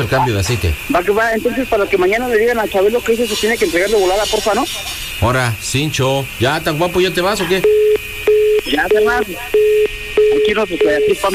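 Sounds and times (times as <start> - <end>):
speech: 0.0 - 8.0, 8.7 - 9.8, 10.4 - 11.3
telephone dial tone after a call is cut off: 7.5 - 11.3.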